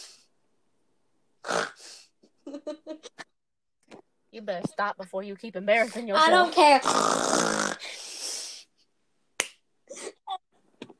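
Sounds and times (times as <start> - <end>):
voice imitating a man's snoring with a rasping snort: 1.4 - 2.0, 6.8 - 8.4
speech: 4.4 - 8.0
brief throaty vocal sounds: 6.7 - 8.6.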